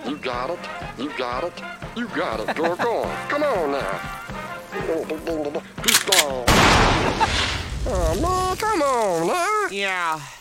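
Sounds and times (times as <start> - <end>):
speech: 0.1 - 10.4
laughter: 2.0 - 3.5, 7.0 - 8.3
loud explosion: 6.5 - 8.6.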